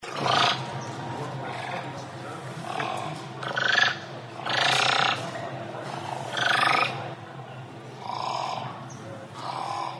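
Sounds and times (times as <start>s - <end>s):
thick-billed raven calling: 0.1s - 0.7s, 1.4s - 1.9s, 2.6s - 5.4s, 6.0s - 7.1s, 8.0s - 8.8s, 9.4s - 9.9s.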